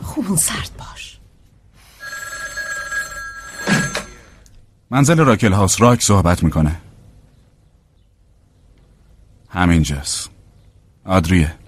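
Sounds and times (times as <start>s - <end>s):
speech: 0.2s - 1.2s, 4.9s - 6.9s, 9.5s - 10.4s, 11.1s - 11.6s
telephone ringing: 2.0s - 4.5s.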